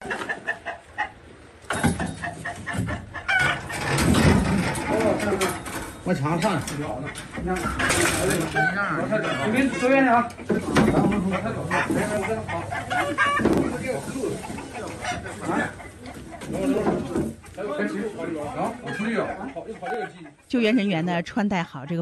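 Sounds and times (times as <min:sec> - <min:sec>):
chickens clucking and squawking in a coop: 0:00.0 - 0:21.0
speech: 0:06.1 - 0:15.8, 0:17.8 - 0:22.0.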